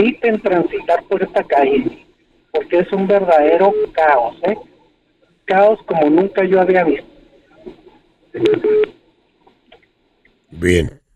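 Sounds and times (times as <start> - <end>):
speech: 0.0 - 4.7, 5.5 - 7.1, 8.4 - 9.0, 10.5 - 11.0
incoming-call telephone tone beeps: 8.4 - 8.9.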